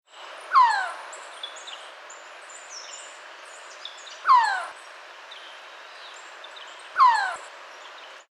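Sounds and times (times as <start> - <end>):
resplendent quetzal calling: 0.5 - 1.8, 4.0 - 4.9, 6.5 - 7.5.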